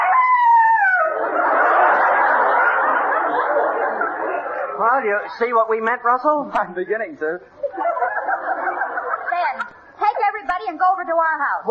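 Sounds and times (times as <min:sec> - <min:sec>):
dog howling: 0:00.0 - 0:01.2
laughter: 0:00.8 - 0:05.7, 0:07.5 - 0:10.0
speech: 0:05.0 - 0:07.6, 0:10.9 - 0:11.7.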